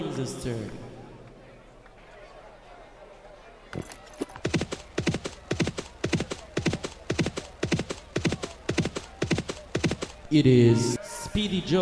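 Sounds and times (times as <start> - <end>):
speech: 0.2 - 0.9, 10.3 - 11.8
horse hooves galloping in a horse race game: 3.8 - 10.3.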